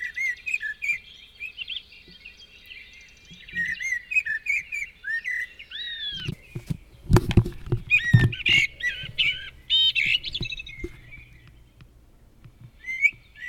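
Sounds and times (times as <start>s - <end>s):
Eurasian blackbird giving short sliding whistled notes: 0.0s - 7.1s, 7.7s - 11.8s, 12.7s - 13.4s
low thumps and rumbling: 6.2s - 13.4s.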